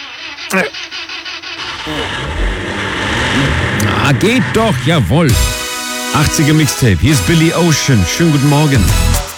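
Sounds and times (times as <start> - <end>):
car engine cranking: 0.0 - 6.2
speech: 0.5 - 1.1, 1.8 - 2.4, 4.0 - 5.5, 6.1 - 9.2.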